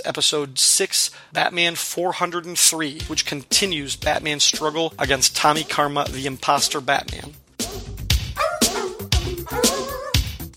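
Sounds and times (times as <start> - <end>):
speech: 0.0 - 7.9
dog barking: 8.4 - 10.3.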